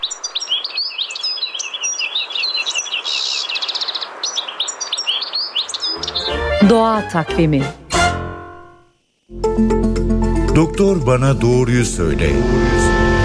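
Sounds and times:
European goldfinch chirping in Mersin: 0.0 - 7.0
speech: 6.6 - 7.8, 9.6 - 9.9, 10.6 - 13.1.

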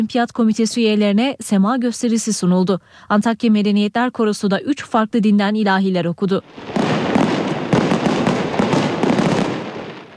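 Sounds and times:
speech: 0.0 - 7.2
fireworks display over the Bosphorus exploding: 6.4 - 10.1.

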